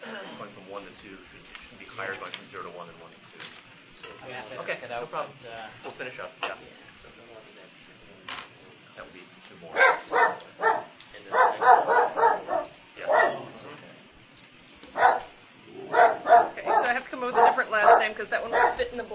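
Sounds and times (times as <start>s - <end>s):
speech: 0.4s - 12.2s, 17.2s - 19.1s
dog barking: 9.7s - 13.5s, 14.9s - 18.9s.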